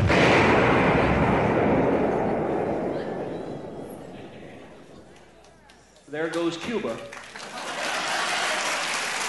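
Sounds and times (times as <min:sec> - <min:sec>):
loud explosion with rumbling roar: 0:00.0 - 0:05.4
speech: 0:06.1 - 0:07.2
laughter: 0:07.4 - 0:09.1.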